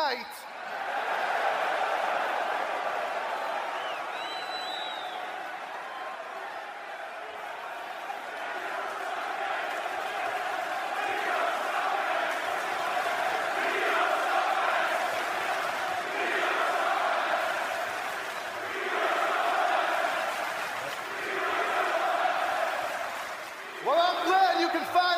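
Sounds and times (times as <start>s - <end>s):
large audience at a live performance shouting, cheering and chattering: 0.0s - 25.0s
speech: 0.1s - 0.4s
sharp whistles: 3.7s - 5.4s.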